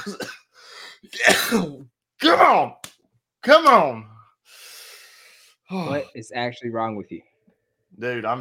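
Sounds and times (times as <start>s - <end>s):
speech: 0.0s - 0.4s, 1.2s - 2.8s, 3.4s - 4.1s, 5.7s - 7.3s, 8.0s - 8.3s
man coughing and clearing his throat: 0.0s - 2.7s.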